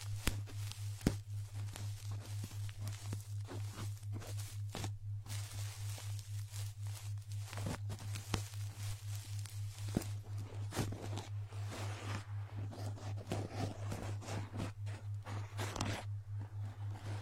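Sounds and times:
sharp clicks and crackles of ear digging: 0.0s - 11.2s
scratching and scraping of ear digging: 0.0s - 17.2s
steady low hum: 0.0s - 17.2s.

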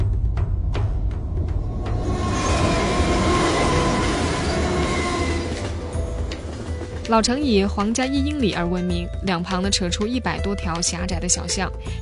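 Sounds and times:
train rumbling past on a railway through Edinburgh: 0.2s - 9.1s
rhythmic train clacks: 1.7s - 10.4s
speech: 7.1s - 11.9s.

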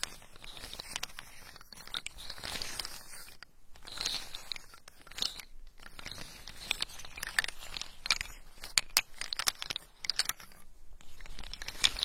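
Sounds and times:
rustling: 0.0s - 12.0s
macadamia nuts crackling: 5.0s - 12.0s.

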